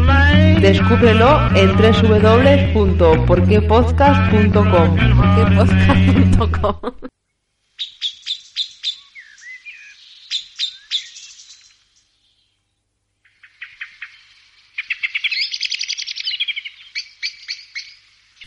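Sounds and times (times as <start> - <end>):
speech: 0.6 - 7.1
laughter: 4.3 - 7.1
male common blackbird singing: 7.8 - 12.6, 13.2 - 18.4.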